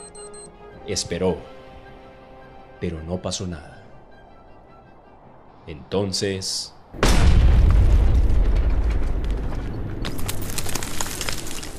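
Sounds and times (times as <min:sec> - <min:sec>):
speech: 0:00.9 - 0:01.6, 0:02.8 - 0:03.8, 0:05.6 - 0:07.8
thunderous explosion: 0:07.0 - 0:09.5
crackling debris: 0:07.0 - 0:11.7.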